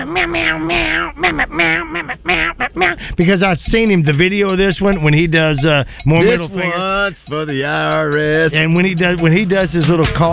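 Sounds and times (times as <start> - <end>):
person imitating a cat meowing: 0.0 - 3.0
speech: 0.1 - 10.3.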